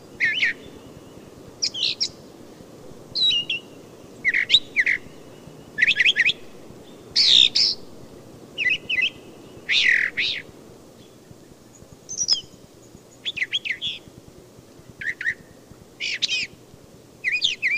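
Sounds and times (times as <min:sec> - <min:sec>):
low background hiss: 0:00.0 - 0:17.7
brown thrasher singing: 0:00.1 - 0:02.2, 0:03.2 - 0:14.1, 0:15.0 - 0:15.4, 0:16.0 - 0:16.6, 0:17.2 - 0:17.7.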